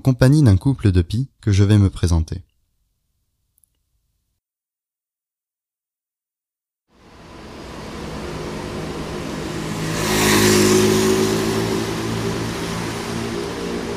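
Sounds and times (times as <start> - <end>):
speech: 0.0 - 2.5
car engine droning and revving: 7.0 - 13.9.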